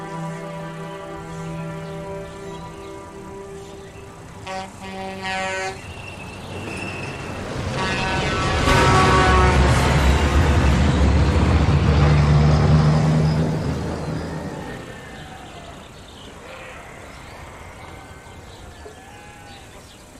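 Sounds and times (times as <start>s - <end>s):
car horn toot: 4.4s - 5.9s, 7.8s - 10.6s
car engine and tyre roar driving past: 6.5s - 15.8s.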